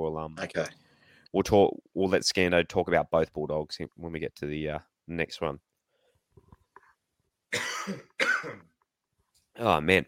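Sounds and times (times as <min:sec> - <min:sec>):
speech: 0:00.0 - 0:05.7, 0:07.5 - 0:08.7, 0:09.6 - 0:10.0
person coughing harshly: 0:07.5 - 0:08.7.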